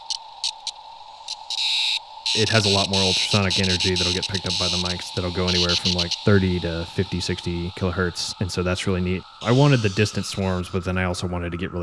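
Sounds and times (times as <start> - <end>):
steady electronic hum: 0.0 - 11.8
Cassin's auklet giving a distressed insect-like buzzing call: 1.3 - 10.6
speech: 2.3 - 11.8.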